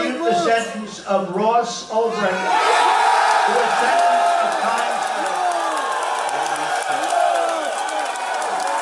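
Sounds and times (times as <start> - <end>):
speech: 0.5 - 2.9, 3.5 - 5.0
large crowd cheering and screaming at a rally: 2.4 - 8.8
whoops from the crowd: 4.2 - 8.8.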